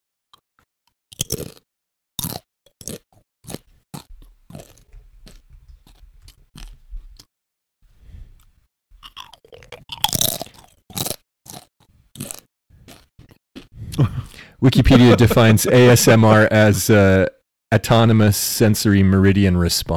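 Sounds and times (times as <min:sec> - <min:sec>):
crisp crunching and chewing: 0:01.1 - 0:01.6, 0:02.2 - 0:07.3, 0:08.4 - 0:14.5
wet mouth sounds: 0:01.2 - 0:01.6, 0:02.2 - 0:07.3, 0:08.2 - 0:14.6
laughter: 0:13.9 - 0:18.6
speech: 0:14.0 - 0:19.9.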